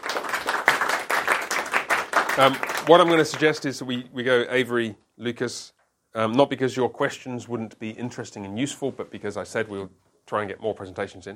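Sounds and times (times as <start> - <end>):
crowd applauding after a presentation: 0.0 - 3.7
speech: 2.4 - 11.3.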